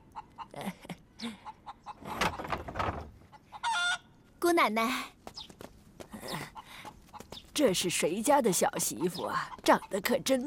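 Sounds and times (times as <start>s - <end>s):
hens clucking and cackling in a chicken coop after laying eggs: 0.0s - 4.2s, 6.3s - 7.5s, 8.5s - 10.4s
speech: 4.5s - 5.2s, 7.6s - 10.4s.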